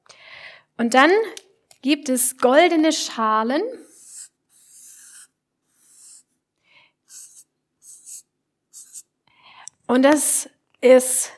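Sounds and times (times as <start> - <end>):
speech: 0.8 - 3.9, 9.9 - 11.3
pen scratching across paper: 3.8 - 6.4, 7.0 - 9.1.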